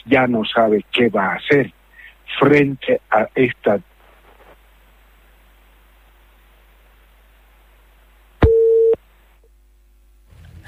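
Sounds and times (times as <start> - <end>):
speech: 0.0 - 3.9
phone line disconnect tone: 8.4 - 9.0.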